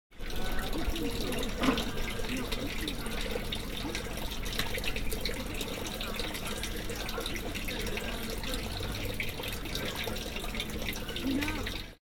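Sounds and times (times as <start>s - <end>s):
water in drain near fish shop: 0.1s - 12.0s.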